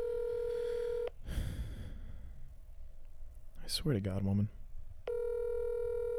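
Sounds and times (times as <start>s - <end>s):
outgoing phone call ringback tone: 0.0s - 1.1s, 5.1s - 6.1s
speech: 3.7s - 4.6s.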